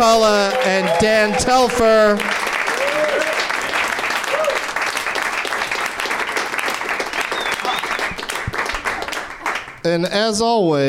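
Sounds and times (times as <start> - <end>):
speech: 0.0 - 2.4, 9.8 - 10.8
crowd applauding: 0.0 - 9.9
whoops and cheers: 0.3 - 1.6, 2.6 - 3.5, 4.2 - 4.7.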